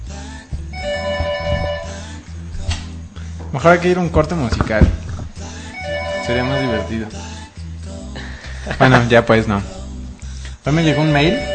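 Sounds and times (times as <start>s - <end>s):
telephone ringing in a studio: 0.8s - 2.0s, 5.8s - 7.1s, 10.9s - 11.5s
speech: 3.5s - 5.0s, 6.3s - 7.2s, 8.7s - 9.8s, 10.6s - 11.5s.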